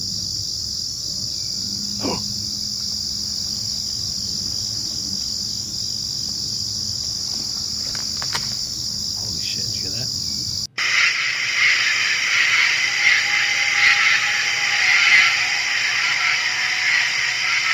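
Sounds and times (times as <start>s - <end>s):
crickets chirping at night in woods: 0.0s - 17.7s
low hum: 0.0s - 17.7s
faint clicks: 7.2s - 9.3s.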